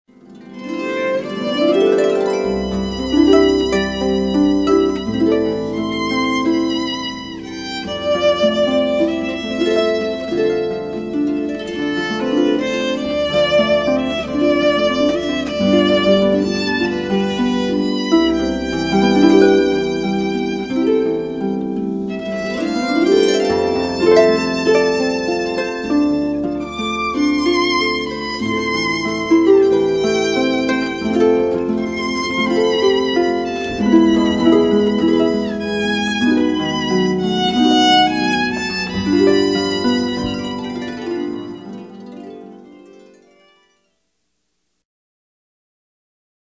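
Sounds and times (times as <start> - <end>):
violin in a duo with harp: 0.1 - 43.9
harp in a duo with violin: 0.1 - 44.0.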